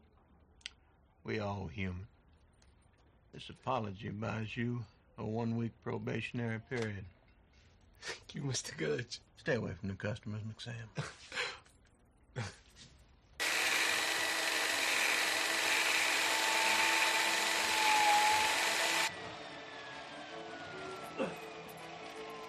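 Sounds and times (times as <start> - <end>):
speech: 1.2 - 2.2, 3.3 - 7.2, 8.0 - 11.4, 12.4 - 12.6
power drill whirring with high-pitched grinding whine: 13.4 - 19.2.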